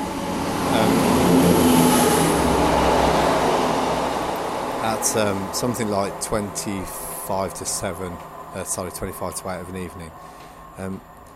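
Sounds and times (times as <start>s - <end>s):
metallic rail noise: 0.0s - 11.3s
train rumbling through a railway station: 0.0s - 11.3s
speech: 5.0s - 11.1s.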